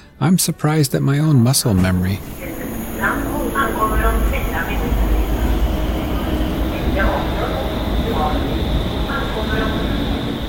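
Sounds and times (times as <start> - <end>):
speech: 0.2 - 2.5
Stockholm subway train rumbling with a deep low roar: 1.6 - 10.4
voices murmuring: 1.8 - 10.4.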